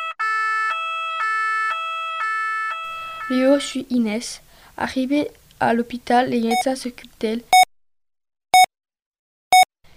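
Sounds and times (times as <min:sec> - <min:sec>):
fire engine siren two-tone wail: 0:00.0 - 0:03.4
speech: 0:03.3 - 0:07.6.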